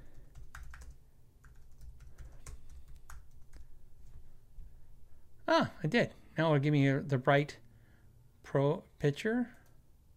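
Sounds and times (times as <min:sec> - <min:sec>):
typing on a computer keyboard: 0:00.0 - 0:03.7
speech: 0:05.5 - 0:07.6, 0:08.5 - 0:09.6.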